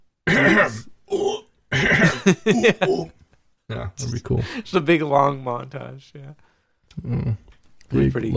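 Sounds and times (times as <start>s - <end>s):
loud guttural burps: 0.3s - 2.3s
speech: 0.4s - 1.3s, 2.3s - 8.3s
laughter: 2.0s - 3.2s.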